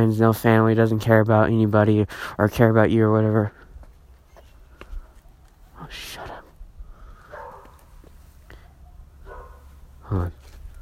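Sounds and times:
speech: 0.0s - 3.6s, 5.8s - 6.3s, 10.1s - 10.4s
dog barking: 7.3s - 7.9s, 8.6s - 9.8s.

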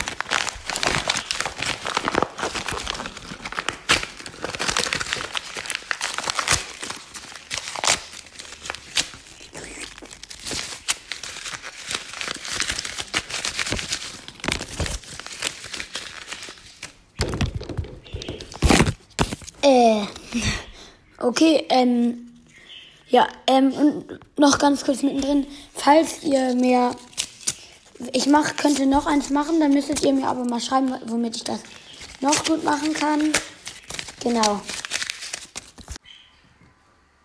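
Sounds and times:
paper crumpling and crinkling: 0.0s - 19.6s, 26.1s - 36.0s
speech: 21.3s - 22.2s, 23.1s - 27.0s, 28.0s - 33.5s, 34.2s - 34.7s.

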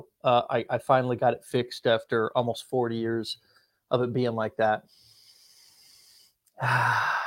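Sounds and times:
speech: 0.0s - 5.0s, 6.6s - 7.2s
deep inhale through the nose: 4.9s - 7.2s.

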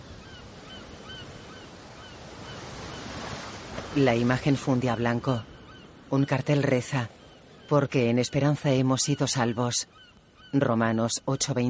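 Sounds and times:
sea waves washing ashore at sunset: 0.0s - 7.6s
speech: 3.9s - 5.5s, 6.1s - 11.6s.

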